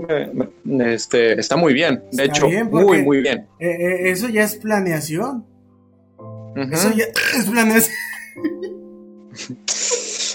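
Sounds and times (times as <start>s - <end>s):
speech: 0.0s - 5.5s, 6.6s - 8.6s
long low croaking burp into the microphone: 7.1s - 8.4s
laughter: 7.7s - 8.8s.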